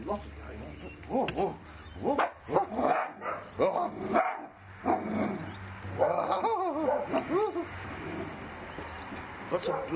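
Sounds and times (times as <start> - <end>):
speech: 0.1 - 2.3
dog barking in high yelping calls: 2.2 - 3.5, 4.2 - 5.0, 6.0 - 7.3, 9.6 - 9.9.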